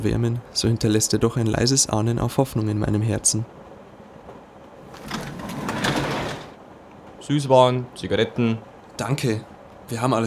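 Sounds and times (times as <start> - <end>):
speech: 0.0 - 3.6, 7.3 - 10.2
train compartment sliding door rolling along its track, closed by the conductor: 4.8 - 6.6.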